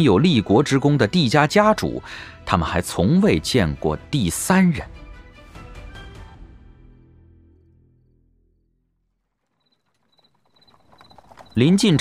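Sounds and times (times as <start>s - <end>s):
speech: 0.0s - 5.0s, 11.6s - 11.9s
soft low rustling: 9.1s - 11.9s
horse-drawn carriage clip-clop hoofbeats: 9.4s - 11.9s.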